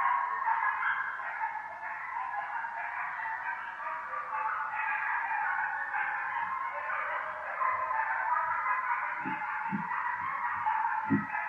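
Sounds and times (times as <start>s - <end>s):
several coyotes howling in chorus: 0.0s - 11.4s
soft low thuds: 9.2s - 10.0s, 11.0s - 11.3s.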